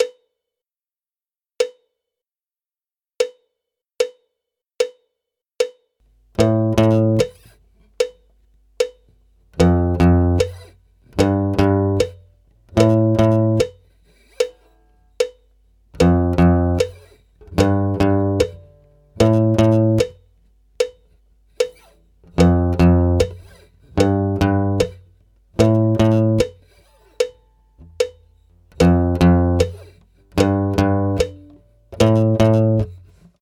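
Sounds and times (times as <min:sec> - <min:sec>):
acoustic guitar riff: 0:06.4 - 0:07.6, 0:09.5 - 0:33.3.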